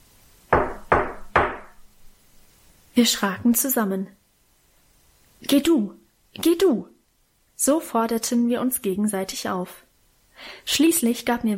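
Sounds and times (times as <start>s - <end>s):
knocks on the wooden front door of a house: 0.5s - 1.8s
speech: 3.0s - 4.2s, 5.5s - 6.9s, 7.6s - 9.8s, 10.4s - 11.5s.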